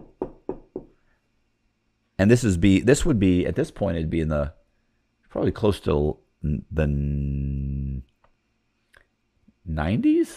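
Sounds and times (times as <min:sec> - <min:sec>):
firm knocks on a door: 0:00.0 - 0:01.0
speech: 0:02.2 - 0:04.6, 0:05.3 - 0:08.1, 0:09.6 - 0:10.3.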